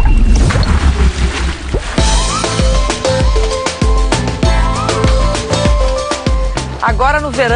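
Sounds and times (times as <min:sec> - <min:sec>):
boat engine rumble: 0:00.0 - 0:07.5
boat hull slapping and splashing against small waves: 0:00.4 - 0:05.6
speech: 0:07.1 - 0:07.5.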